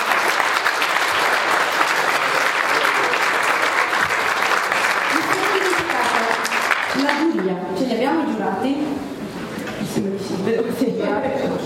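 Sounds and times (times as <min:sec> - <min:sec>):
audience applause at a poetry slam event: 0:00.0 - 0:07.5
speech: 0:07.0 - 0:09.1, 0:10.0 - 0:11.6.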